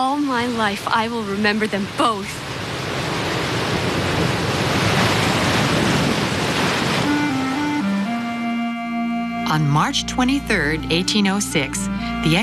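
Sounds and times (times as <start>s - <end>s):
speech: 0.0s - 2.5s, 9.5s - 12.4s
Pacific Ocean surf with breaking waves: 0.0s - 8.3s
sustained musical tones: 7.0s - 12.4s.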